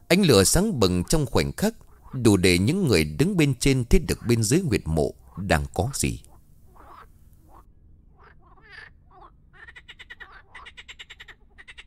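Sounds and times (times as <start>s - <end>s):
many hand-sized frogs croaking while crawling over each other in a grave pit: 0.0s - 11.8s
speech: 0.1s - 6.3s.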